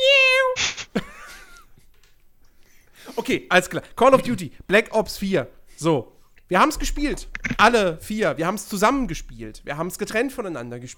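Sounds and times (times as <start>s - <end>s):
person imitating a cat meowing: 0.0s - 0.8s
person making a sharp breathy hiss: 0.4s - 1.0s
speech: 3.2s - 10.9s.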